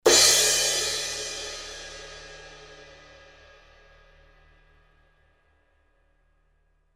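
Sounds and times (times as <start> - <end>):
17in custom hybrid crash cymbal: 0.0 - 5.2.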